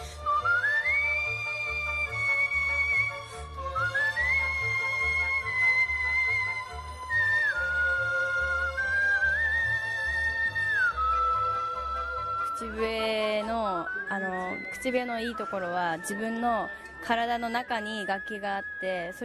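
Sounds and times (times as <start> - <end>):
14-year-old girl whistling competitively: 0.1 - 12.8, 13.7 - 19.2.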